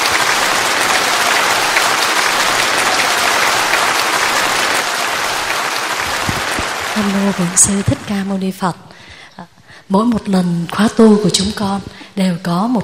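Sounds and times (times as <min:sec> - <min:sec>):
large crowd applauding at a Buddhist ceremony: 0:00.0 - 0:08.4
speech: 0:07.0 - 0:12.8.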